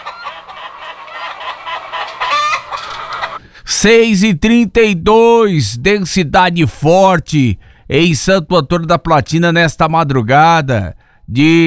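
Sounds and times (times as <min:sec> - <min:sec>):
hens clucking and chattering: 0:00.0 - 0:03.4
rooster crowing: 0:00.0 - 0:03.4
speech: 0:03.8 - 0:11.6.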